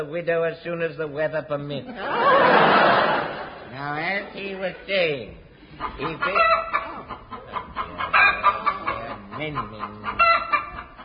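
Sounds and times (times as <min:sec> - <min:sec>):
speech: 0:00.0 - 0:06.7, 0:09.4 - 0:10.5
slight noise: 0:00.0 - 0:11.0
laughter: 0:01.9 - 0:04.9, 0:05.7 - 0:11.0
hen clucking and squawking while being held, in fog: 0:05.6 - 0:11.0.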